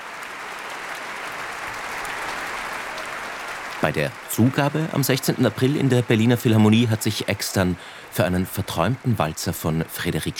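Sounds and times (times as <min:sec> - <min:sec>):
large concert audience applause for piano soloist: 0:00.0 - 0:10.3
speech: 0:03.8 - 0:10.3.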